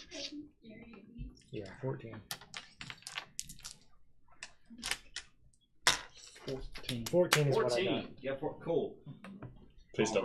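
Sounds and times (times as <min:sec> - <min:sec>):
speech: 0:00.1 - 0:02.5, 0:06.5 - 0:09.4, 0:10.0 - 0:10.2
hard plastic dice rolling across a tabletop: 0:02.3 - 0:03.9.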